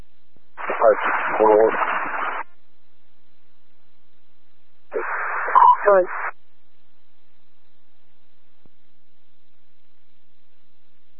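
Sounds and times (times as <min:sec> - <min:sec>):
radio static crackle: 0:00.6 - 0:02.6, 0:04.9 - 0:06.4
speech: 0:00.9 - 0:02.0, 0:05.9 - 0:06.2.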